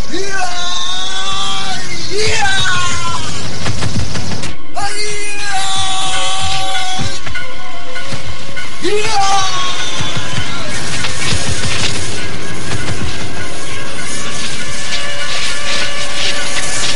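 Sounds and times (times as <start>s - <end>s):
warrior's long loud dramatized yell in a fight against archers: 0.0s - 3.4s, 4.8s - 7.2s, 8.8s - 10.7s
dense noisy background: 0.0s - 16.9s.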